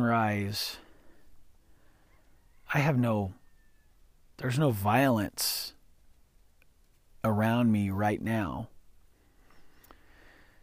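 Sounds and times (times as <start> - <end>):
speech: 0.0 - 0.8, 2.7 - 3.4, 4.4 - 5.8, 7.2 - 8.7
chicken cluck-like squawk: 2.0 - 4.0.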